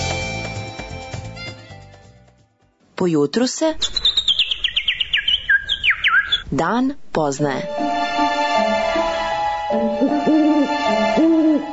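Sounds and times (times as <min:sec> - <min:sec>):
speech: 0:03.0 - 0:04.0, 0:06.5 - 0:09.1, 0:09.7 - 0:11.7
owl hooting: 0:03.8 - 0:06.5, 0:07.6 - 0:11.7.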